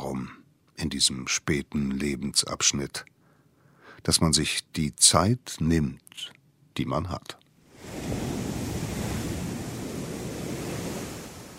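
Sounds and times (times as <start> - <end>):
speech: 0.8 - 3.2, 4.0 - 8.2
ocean waves breaking on a beach: 7.7 - 11.5
wind noise: 7.8 - 11.5.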